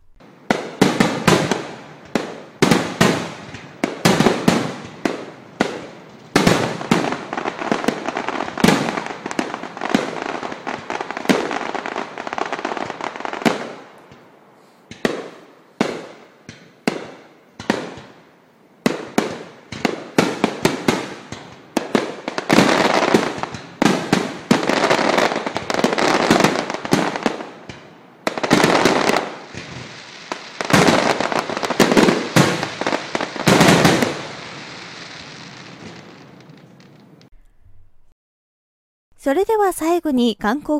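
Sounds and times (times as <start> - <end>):
fireworks bursting over a lake: 0.0 - 13.9, 18.8 - 37.3
speech: 39.2 - 40.7.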